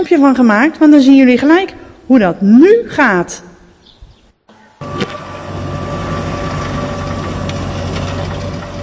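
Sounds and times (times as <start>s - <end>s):
speech: 0.0s - 3.5s
large John Deere tractor sowing maize in a field: 4.5s - 8.8s.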